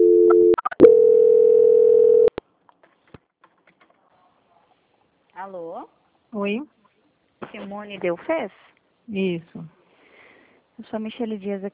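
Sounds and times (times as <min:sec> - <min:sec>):
telephone line tone during a call transfer: 0:00.0 - 0:02.3
speech: 0:05.5 - 0:06.8, 0:07.5 - 0:09.8, 0:10.8 - 0:11.7.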